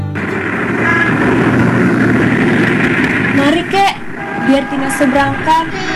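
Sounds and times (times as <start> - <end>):
car engines rumbling in congested traffic: 0.1 - 5.6
speech: 5.0 - 5.9.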